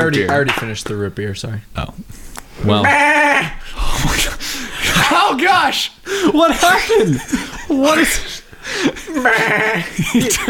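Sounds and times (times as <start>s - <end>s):
speech: 0.0s - 4.3s, 5.0s - 10.4s
person's voice imitating a goat bleating: 2.8s - 3.6s, 9.2s - 9.8s
laughter: 2.9s - 10.4s.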